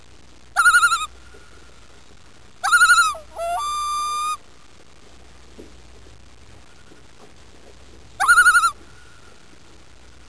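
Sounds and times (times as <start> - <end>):
common loon calling: 0.5 - 1.2, 2.6 - 4.5, 8.2 - 9.0.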